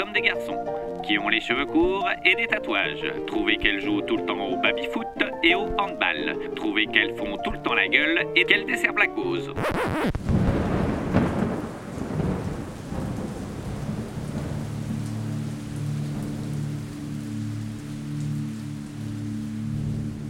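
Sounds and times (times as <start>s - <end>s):
heavy rain: 0.0s - 7.0s, 10.1s - 20.2s
speech: 0.0s - 10.1s
deep roll of thunder: 10.1s - 17.0s.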